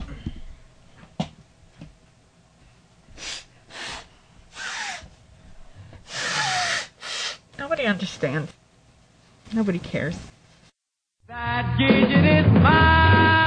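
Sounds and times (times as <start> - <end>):
person blowing nose: 3.2 - 5.2, 6.0 - 7.4
small sniffs: 3.2 - 5.2, 6.0 - 7.4
speech: 7.8 - 8.6, 9.5 - 10.4, 11.7 - 13.0.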